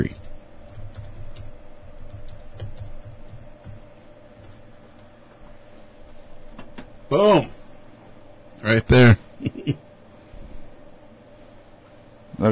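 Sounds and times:
speech: 0.0 - 0.2, 7.1 - 7.6, 8.7 - 9.8
typing a search on a computer keyboard: 0.0 - 4.6.

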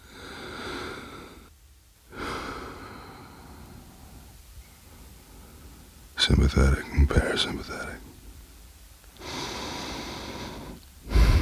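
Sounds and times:
slow breathing through the nose: 0.0 - 1.5, 2.1 - 6.2, 9.2 - 11.4
speech: 6.3 - 8.1.

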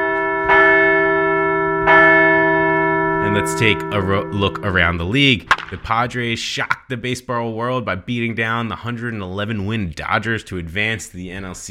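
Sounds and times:
large bell ringing: 0.0 - 6.2
speech: 3.4 - 11.7.

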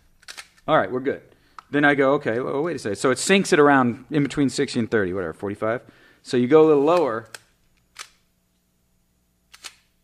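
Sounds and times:
speech: 0.7 - 7.4
camera shutter firing with hot-shoe flash: 9.5 - 9.9.

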